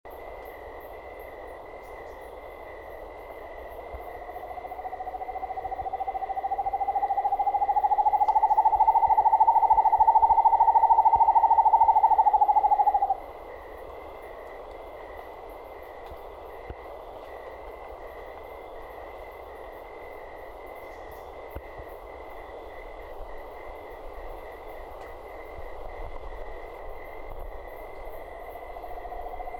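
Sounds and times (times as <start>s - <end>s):
corujinha frog calling: 4.2s - 13.2s.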